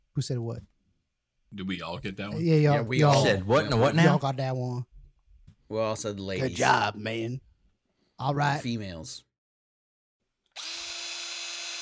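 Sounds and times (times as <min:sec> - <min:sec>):
speech: 0:00.2 - 0:00.7, 0:01.5 - 0:04.9, 0:05.7 - 0:07.5, 0:08.2 - 0:09.3
power drill running at full speed with high-pitched motor whine: 0:10.6 - 0:11.8.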